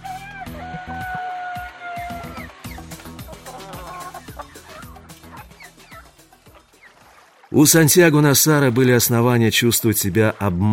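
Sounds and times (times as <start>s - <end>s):
roosters crowing in a port: 0.0s - 6.1s
chickens clucking and squawking in a port: 0.0s - 7.2s
speech: 7.5s - 10.7s.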